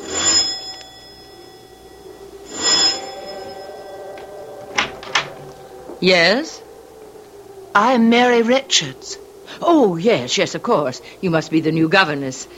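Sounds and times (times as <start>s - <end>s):
doorbell ringing at a large oak door in the rain: 0.0s - 6.4s
speech: 6.0s - 6.6s, 7.7s - 12.5s.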